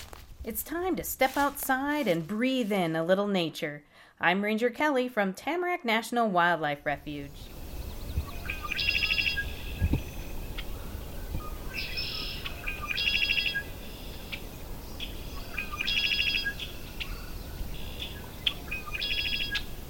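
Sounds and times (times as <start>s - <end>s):
speech: 0.5s - 7.5s
red-winged blackbird song with buzzy rattling trill: 7.1s - 19.8s.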